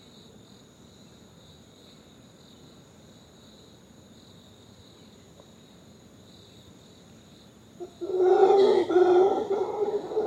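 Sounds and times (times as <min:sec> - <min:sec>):
crickets chirping in the forest: 0:00.0 - 0:10.2
howler monkeys howling at dawn: 0:07.8 - 0:10.2.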